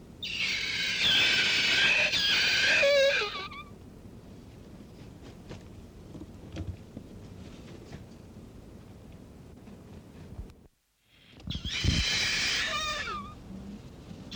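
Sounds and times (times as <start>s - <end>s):
kakapo rough squawking call: 0.2s - 3.7s, 11.5s - 13.4s.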